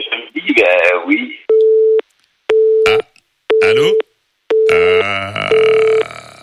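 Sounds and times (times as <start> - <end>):
telephone dial tone beeps after call cut off: 1.5 - 6.0.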